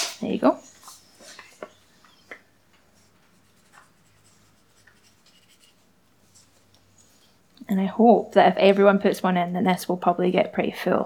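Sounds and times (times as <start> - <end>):
speech: 0.2 - 0.8, 7.7 - 11.0
pen or pencil scratching on paper while drawing: 3.0 - 6.6.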